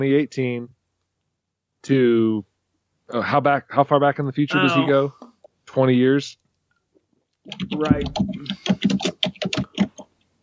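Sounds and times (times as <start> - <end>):
speech: 0.0 - 0.8, 1.8 - 2.5, 3.1 - 6.4, 7.4 - 9.2
loud clattering typing on an old computer keyboard: 7.5 - 10.0.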